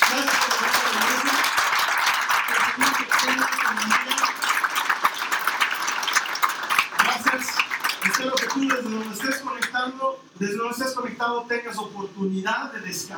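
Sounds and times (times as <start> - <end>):
audience applauding: 0.0 - 9.8
speech: 11.2 - 13.1.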